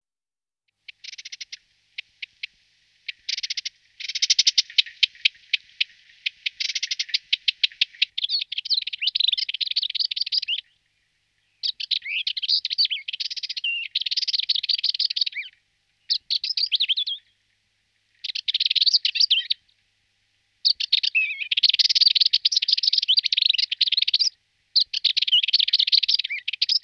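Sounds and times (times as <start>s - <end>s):
Rüppell's warbler Sylvia ruppeli singing: 0.9s - 2.5s, 3.1s - 10.8s, 11.4s - 17.3s, 18.2s - 19.6s, 20.6s - 26.8s.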